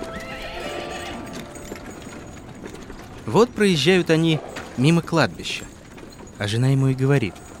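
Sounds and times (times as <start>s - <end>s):
horse neighing: 0.0s - 1.4s
horse-drawn cart hooves clip-clopping: 0.0s - 7.5s
speech: 3.3s - 5.7s, 6.4s - 7.4s.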